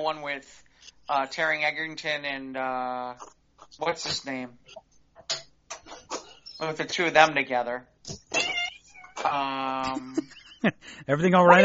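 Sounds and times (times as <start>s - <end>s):
speech: 0.0s - 8.5s, 9.2s - 11.6s
cat meowing: 8.1s - 9.3s.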